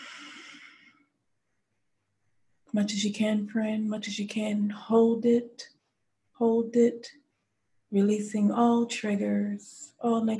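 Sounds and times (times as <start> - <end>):
deep breath in during a guided breathing exercise: 0.0 - 1.1
speech: 2.7 - 5.7, 6.4 - 7.2, 7.9 - 10.3.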